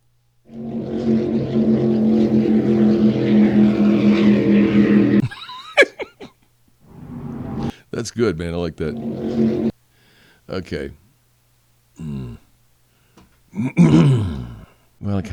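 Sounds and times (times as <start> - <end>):
brief whooshing chirping sweeps: 0.5 - 5.3, 6.8 - 7.7, 8.6 - 9.7
speedboat motor droning over lake waves: 0.5 - 5.3, 6.9 - 7.7, 8.5 - 9.7
laughter: 5.2 - 6.3
speech: 8.0 - 9.7, 10.5 - 11.0, 13.6 - 15.3.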